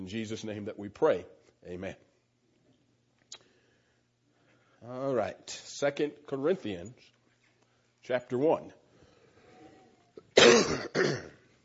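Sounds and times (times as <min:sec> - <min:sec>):
speech: 0:00.0 - 0:02.1, 0:04.8 - 0:07.1, 0:08.0 - 0:08.8, 0:10.4 - 0:11.3
harsh raspy coughs: 0:10.3 - 0:11.4
throat clearing: 0:10.4 - 0:11.4.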